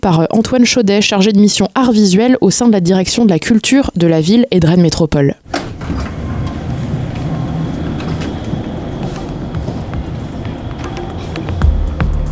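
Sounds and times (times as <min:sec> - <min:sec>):
speech: 0:00.0 - 0:06.2
train station rumble and hum in Rennes by a statue near a metro line: 0:05.4 - 0:12.3.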